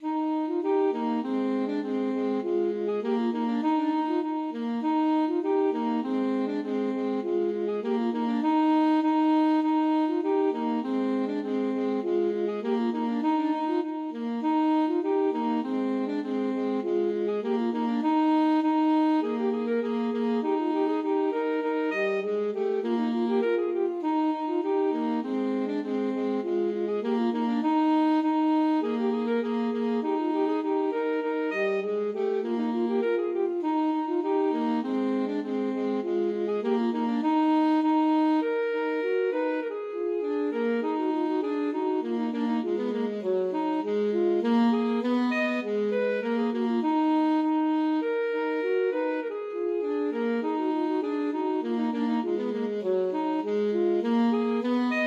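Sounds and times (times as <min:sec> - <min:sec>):
alto saxophone duet: 0:00.0 - 0:55.0.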